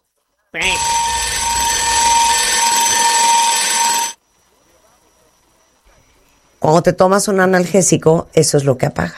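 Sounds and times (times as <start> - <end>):
speech: 0.5 - 1.0, 6.6 - 9.1
loud continuous electronic alarm blaring with harsh buzzing: 0.6 - 4.2.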